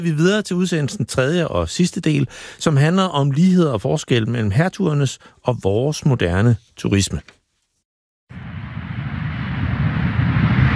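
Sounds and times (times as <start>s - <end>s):
speech: 0.0s - 7.4s
airplane cabin drone before a flight: 8.3s - 10.7s.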